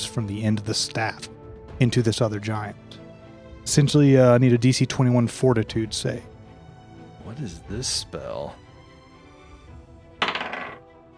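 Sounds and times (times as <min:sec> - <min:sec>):
speech: 0:00.2 - 0:02.9, 0:03.6 - 0:06.3, 0:07.3 - 0:08.6
dice rolling on a table for a fortitude save: 0:10.2 - 0:10.8.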